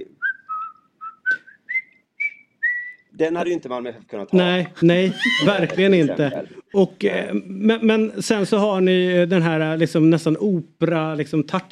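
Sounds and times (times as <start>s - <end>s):
person whistling a football team's stadium entrance tune: 0.2s - 3.1s
speech: 3.2s - 11.6s
laughter: 4.9s - 6.6s.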